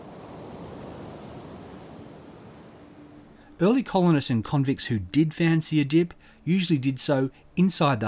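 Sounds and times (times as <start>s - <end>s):
ocean surf washing onto a beach: 0.0s - 3.7s
breezy hiss: 0.0s - 8.0s
speech: 3.6s - 8.0s.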